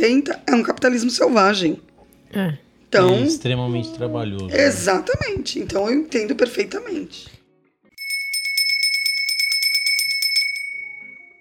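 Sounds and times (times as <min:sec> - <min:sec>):
speech: 0:00.0 - 0:07.4
small notification bell sound effect ringing: 0:08.0 - 0:11.3.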